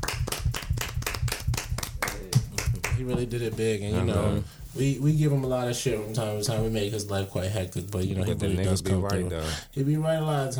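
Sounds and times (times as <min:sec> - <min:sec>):
hands clapping in a brisk steady rhythm: 0:00.0 - 0:03.6
speech: 0:03.0 - 0:10.5.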